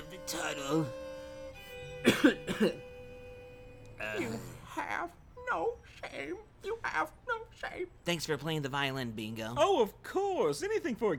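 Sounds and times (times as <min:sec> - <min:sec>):
speech: 0:00.3 - 0:01.0, 0:02.0 - 0:02.9, 0:04.1 - 0:11.1
harsh coughs from a person with bird flu: 0:02.0 - 0:02.8, 0:04.0 - 0:04.6.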